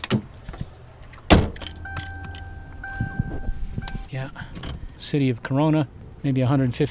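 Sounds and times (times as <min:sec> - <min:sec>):
car door shutting: 0:01.2 - 0:04.9
two-tone electronic chime from car dashboard: 0:01.6 - 0:04.1
speech: 0:04.2 - 0:06.8.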